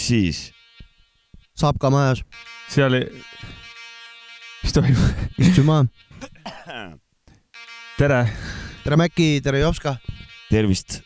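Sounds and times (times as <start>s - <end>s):
speech: 0.1s - 0.6s, 1.6s - 3.6s, 4.6s - 7.0s, 8.0s - 11.0s
harsh raspy coughing: 4.9s - 7.0s.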